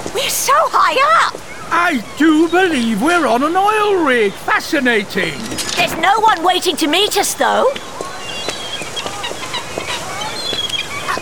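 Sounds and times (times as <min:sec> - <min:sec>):
steady windy background: 0:00.0 - 0:11.2
gulls calling: 0:00.2 - 0:11.2
speech: 0:00.4 - 0:07.9.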